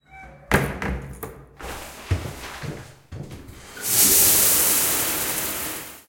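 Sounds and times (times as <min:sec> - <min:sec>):
shower starting: 0:01.6 - 0:06.0.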